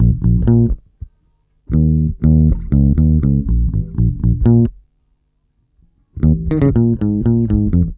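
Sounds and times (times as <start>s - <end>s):
roots disco bass line in D-sharp major: 0.0s - 0.8s, 1.7s - 4.8s, 6.2s - 7.9s.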